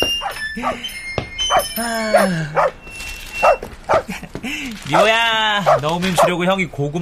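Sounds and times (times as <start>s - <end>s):
stray dog whimpering and yelping at a window: 0.2s - 4.1s
speech: 4.9s - 7.0s.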